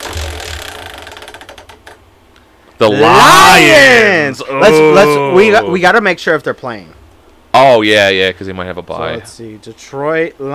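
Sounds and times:
spun wheel used to pick football teams ticking: 0.0s - 2.0s
speech: 2.8s - 7.0s, 7.6s - 10.5s.

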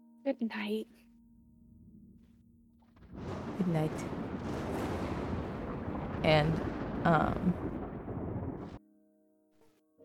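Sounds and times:
speech: 0.2s - 1.1s, 3.2s - 4.8s, 6.2s - 7.8s
thunder rumbling: 1.3s - 8.8s.

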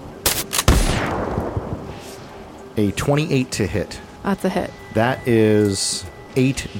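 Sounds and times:
rifle shots: 0.2s - 1.7s
speech: 2.8s - 6.7s.

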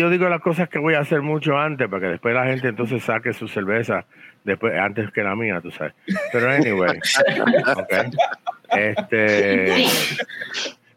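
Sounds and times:
speech: 0.0s - 10.8s
laughter: 6.1s - 10.7s
dog sneezing: 9.7s - 10.8s.

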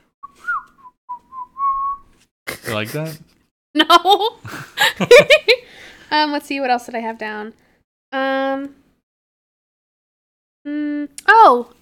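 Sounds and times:
person whistling a tune: 0.2s - 2.1s
laughter: 2.5s - 3.3s, 4.2s - 5.6s
speech: 2.7s - 8.8s, 10.6s - 11.8s.

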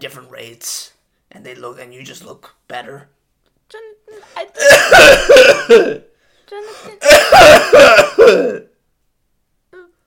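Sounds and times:
speech: 0.0s - 8.7s
harsh forceful coughing fit: 4.5s - 6.1s, 6.8s - 8.7s.

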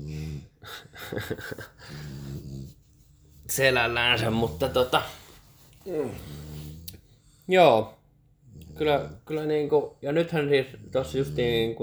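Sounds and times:
dog snoring and snuffling while asleep: 0.0s - 0.8s, 1.8s - 2.9s, 3.6s - 5.2s, 5.8s - 7.2s, 8.4s - 11.8s
speech: 1.1s - 2.1s, 3.5s - 5.2s, 5.8s - 6.4s, 7.5s - 8.0s, 8.8s - 11.8s.

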